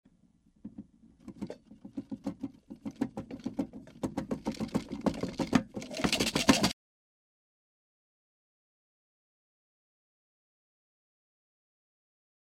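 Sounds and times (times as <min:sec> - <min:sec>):
metal objects swaying and falling from a table or shelf in an earthquake in a house: 0:02.8 - 0:06.7.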